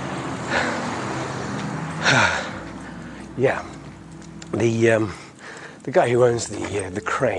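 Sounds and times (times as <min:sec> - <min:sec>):
car passing by: 0:00.0 - 0:05.0
outdoor road noise: 0:00.0 - 0:07.3
speech: 0:03.4 - 0:03.8, 0:04.5 - 0:05.2, 0:05.8 - 0:07.3.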